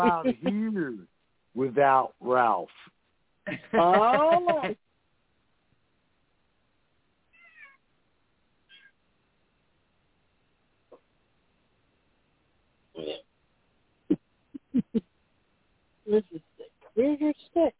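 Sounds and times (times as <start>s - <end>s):
laughter: 0.0s - 0.8s, 3.5s - 4.8s
speech: 0.0s - 4.8s, 16.1s - 16.4s, 17.0s - 17.7s
cat meowing softly: 7.3s - 7.8s, 8.7s - 9.0s.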